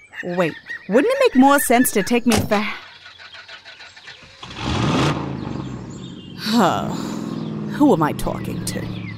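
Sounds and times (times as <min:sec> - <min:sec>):
speech: 0:00.2 - 0:02.8, 0:06.6 - 0:07.1, 0:07.8 - 0:09.0
car engine starting and driving off: 0:04.0 - 0:09.1.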